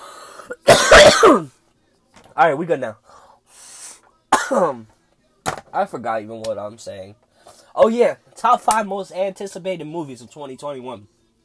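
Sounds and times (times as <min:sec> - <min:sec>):
harsh coughing: 0:00.4 - 0:01.6, 0:04.3 - 0:04.8
speech: 0:00.5 - 0:01.6, 0:02.4 - 0:03.2, 0:04.5 - 0:05.0, 0:05.7 - 0:07.2, 0:07.8 - 0:11.2.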